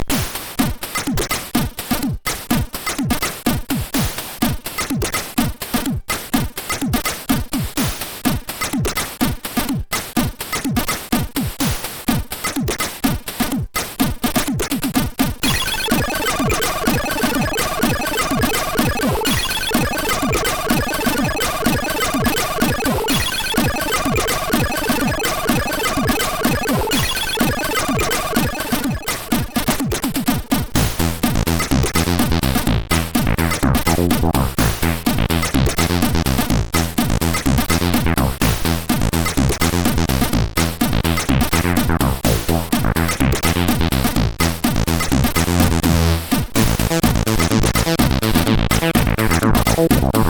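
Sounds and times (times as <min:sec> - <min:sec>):
SID 8580 chip drums: 0:00.0 - 0:50.2
SID 8580 chip bass: 0:15.4 - 0:30.2, 0:30.8 - 0:50.2.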